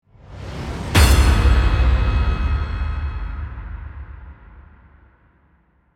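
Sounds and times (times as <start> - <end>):
dramatic scare impact suspense hit: 0.8 - 5.6.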